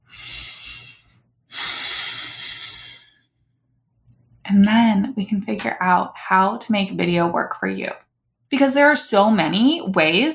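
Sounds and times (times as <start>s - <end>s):
deep breath in and out: 0.0s - 3.3s
speech: 4.5s - 10.3s.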